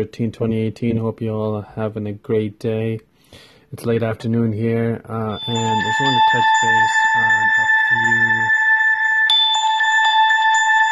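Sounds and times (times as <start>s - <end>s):
speech: 0.0s - 8.6s
phone ringing with a bright electronic tone: 5.4s - 10.9s.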